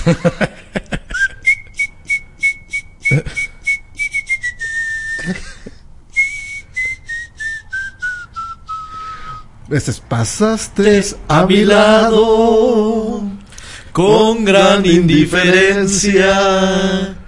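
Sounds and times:
laughter: 0.0s - 1.4s, 5.2s - 5.8s
speech: 0.1s - 0.5s, 9.7s - 13.0s, 14.0s - 17.2s
person whistling a serenade melody: 1.1s - 9.5s
short breathy bursts: 8.8s - 9.6s, 13.5s - 14.0s.

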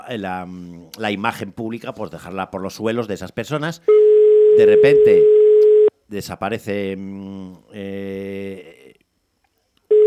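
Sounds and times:
speech: 0.1s - 5.4s, 6.1s - 8.7s
telephone ringing with buzzy electronic ring tones: 3.9s - 5.9s.

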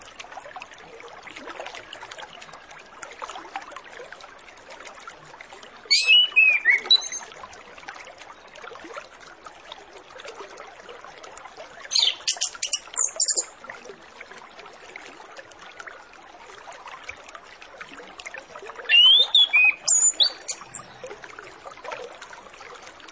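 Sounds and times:
Orange-headed Thrush singing whistled phrases: 5.9s - 7.2s, 18.9s - 20.7s.

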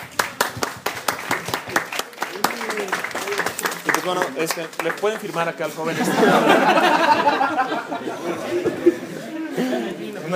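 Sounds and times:
audience clapping at a comic festival trivia session: 0.0s - 5.7s
speech: 4.0s - 10.0s
laughter: 5.6s - 10.3s.

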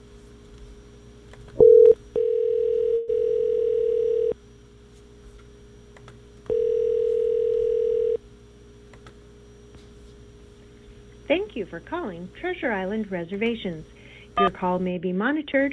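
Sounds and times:
telephone dial tone on a line to a hotel reservation number: 1.6s - 4.4s, 6.5s - 8.2s
speech: 11.6s - 15.7s.

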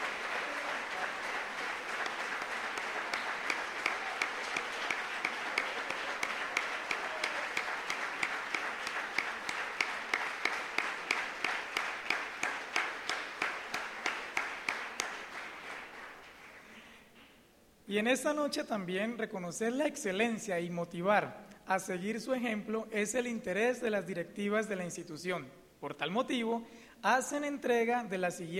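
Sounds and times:
audience applause at a graduation ceremony: 0.0s - 16.7s
speech: 17.9s - 28.5s.

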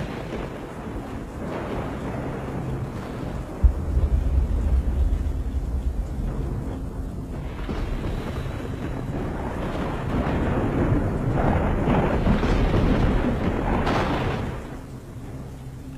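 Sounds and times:
thunder crack and rumble after a lightning strike: 0.0s - 15.9s.

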